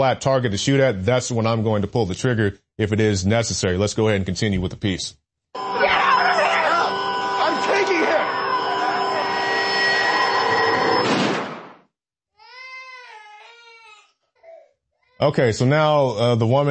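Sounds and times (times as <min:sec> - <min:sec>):
speech: 0:00.0 - 0:05.9, 0:15.2 - 0:16.6
loud dense wash of noise: 0:05.6 - 0:11.2
baby crying: 0:12.4 - 0:15.2.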